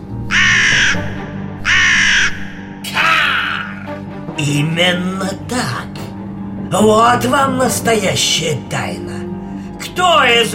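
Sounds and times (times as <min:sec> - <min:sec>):
raven cawing loudly: 0:00.2 - 0:04.0
speech: 0:04.4 - 0:05.9, 0:06.7 - 0:09.1, 0:10.0 - 0:10.5.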